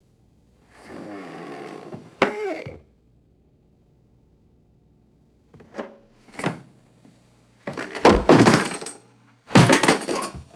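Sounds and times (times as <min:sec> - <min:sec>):
wooden chair falling on concrete: 0:07.7 - 0:10.5.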